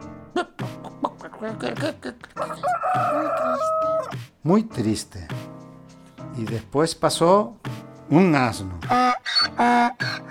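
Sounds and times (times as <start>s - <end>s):
speech: 1.4s - 5.4s, 6.4s - 10.1s
rooster crowing: 2.4s - 4.1s
rooster clucking in short choppy bursts: 2.4s - 4.2s, 8.9s - 10.3s.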